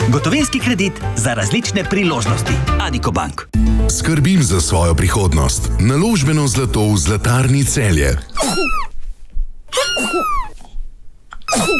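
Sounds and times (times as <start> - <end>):
speech: 0.1 - 8.8
cat coughing: 8.3 - 8.9, 9.7 - 10.5, 11.5 - 11.7.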